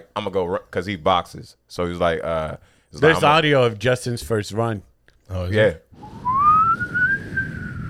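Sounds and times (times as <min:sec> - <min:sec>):
speech: 0:00.0 - 0:06.2
person whistling an imitation of a police siren: 0:06.0 - 0:07.8.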